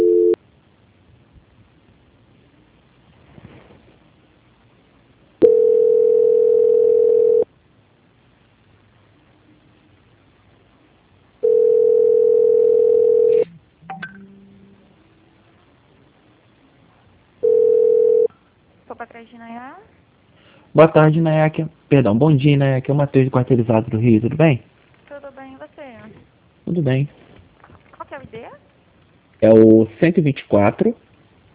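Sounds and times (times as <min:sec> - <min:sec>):
telephone line tone beeps during a call transfer: 0:00.0 - 0:00.4, 0:05.4 - 0:07.4, 0:11.4 - 0:14.4, 0:17.4 - 0:18.3
speech: 0:20.8 - 0:24.7, 0:26.8 - 0:27.2, 0:29.6 - 0:31.0.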